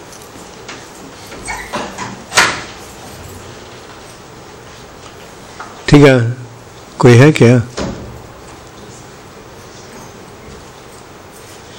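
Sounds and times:
steady hiss: 0.0 - 11.7
door opening with rattles and a scraping clack: 0.6 - 4.0, 7.7 - 9.0
speech: 5.9 - 6.4, 7.0 - 7.8.

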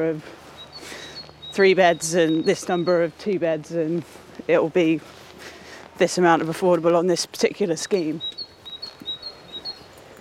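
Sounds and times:
speech: 0.0 - 1.0, 1.6 - 8.4
bird singing outdoors with chirps and whistled notes: 0.5 - 3.4, 7.6 - 10.1.

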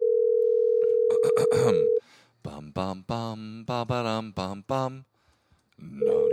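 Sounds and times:
telephone call ringing tone: 0.0 - 2.0, 6.0 - 6.3
speech: 1.5 - 5.1, 5.8 - 6.3.

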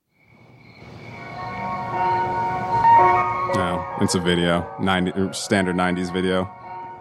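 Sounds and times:
tinny ice cream truck jingle: 1.2 - 6.9
speech: 4.0 - 6.6.

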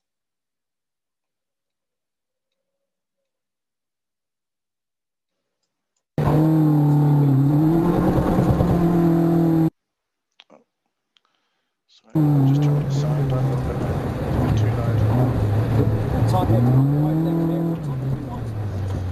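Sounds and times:
loud car engine speeding around a wet, cold racing circuit: 6.2 - 9.7, 12.2 - 19.1.

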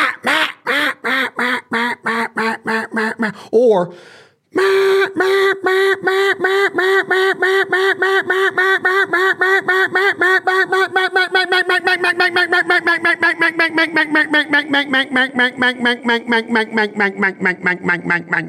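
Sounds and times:
duck call blown in quacks: 0.0 - 3.3, 4.6 - 15.8
speech: 3.2 - 8.7, 14.7 - 18.4.

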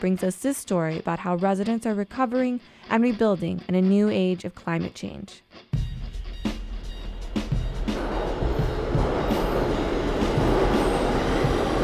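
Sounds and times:
speech: 0.0 - 5.7
interior rumble of a moving train headed to Brooklyn on the way to Queens New York: 7.1 - 11.8.

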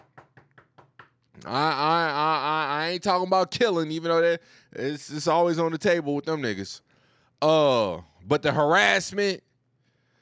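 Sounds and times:
knuckles knocking on wood: 0.0 - 1.2
speech: 1.4 - 9.5.

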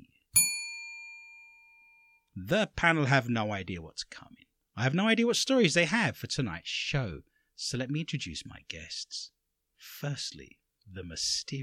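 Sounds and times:
bright metallic bell ding: 0.4 - 2.2
speech: 2.4 - 11.6.

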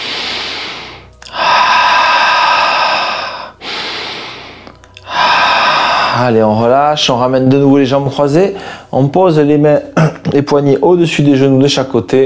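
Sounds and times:
deep slow breathing during a yoga exercise: 0.0 - 6.6, 8.5 - 9.0
speech: 6.2 - 12.2.

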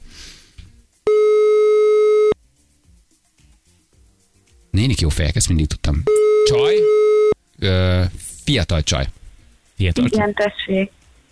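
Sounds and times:
telephone ringing tone while placing a call: 1.1 - 2.4, 6.1 - 7.4
speech: 4.8 - 7.0, 7.6 - 9.2, 9.8 - 11.0.

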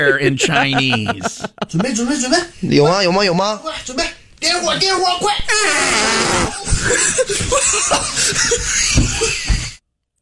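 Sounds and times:
laughter: 0.0 - 2.2, 6.5 - 9.8
speech: 0.0 - 9.5
loud drawn-out fart sound in video playback: 5.6 - 6.7.

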